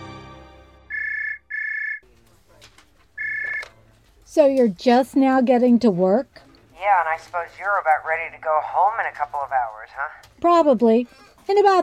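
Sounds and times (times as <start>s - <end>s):
telephone ringing with a bright electronic trill: 0.9s - 2.0s, 3.2s - 3.7s
speech: 4.4s - 11.8s.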